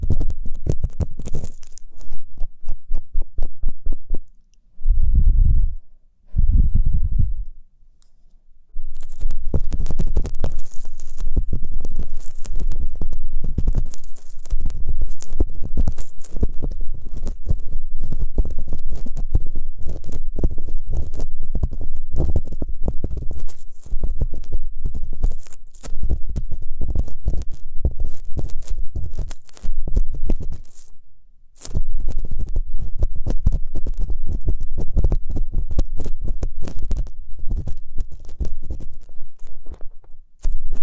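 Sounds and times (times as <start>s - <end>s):
ear cleaning with dense scratching crackling and soft rubbing: 0.0s - 4.3s, 8.8s - 31.0s, 31.6s - 40.8s
low muffled thumps: 2.9s - 7.6s.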